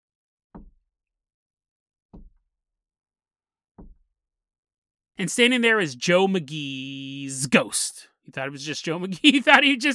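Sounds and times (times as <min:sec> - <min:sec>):
heavy knocks on a door: 0:03.8 - 0:04.1
speech: 0:05.2 - 0:09.9.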